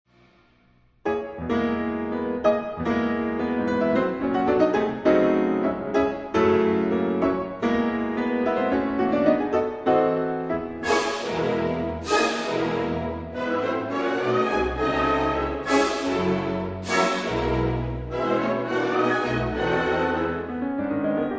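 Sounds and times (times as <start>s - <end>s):
piano toccata: 1.0s - 21.3s.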